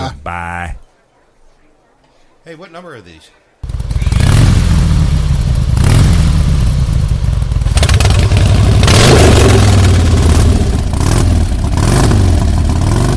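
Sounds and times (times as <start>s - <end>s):
speech: 0.1s - 0.8s, 2.4s - 3.4s
motorcycle engines revving as the bikes pull away: 3.6s - 13.1s.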